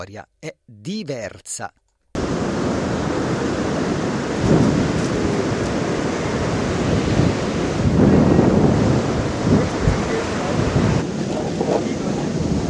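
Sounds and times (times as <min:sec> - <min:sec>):
speech: 0:00.0 - 0:02.8
ocean waves breaking on a beach: 0:02.2 - 0:12.6.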